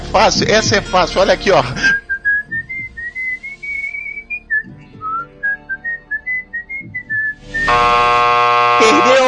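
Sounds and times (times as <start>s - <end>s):
speech: 0.2s - 1.9s
person whistling a national anthem in a comedy game show: 1.8s - 7.8s
loud game show buzzing tone: 7.4s - 9.2s.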